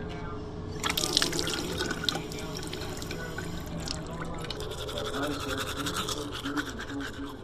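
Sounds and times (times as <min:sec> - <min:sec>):
water drips: 0:00.8 - 0:04.7
running tap water: 0:00.8 - 0:06.2
toothbrush scrubbing against teeth: 0:00.8 - 0:07.4.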